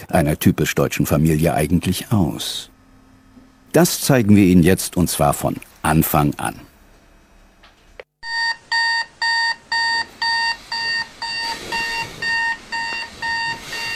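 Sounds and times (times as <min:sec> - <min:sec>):
speech: 0:00.1 - 0:02.7, 0:03.7 - 0:06.7
alarm clock beeping with bright electronic tones: 0:08.2 - 0:13.9.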